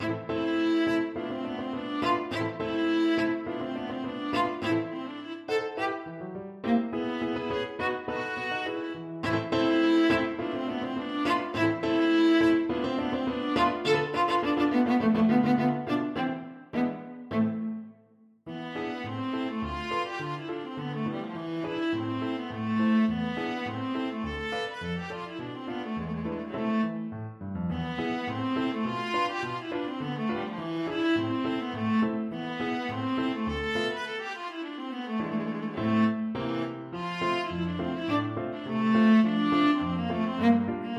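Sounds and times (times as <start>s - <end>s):
viola playing: 0.0s - 40.9s.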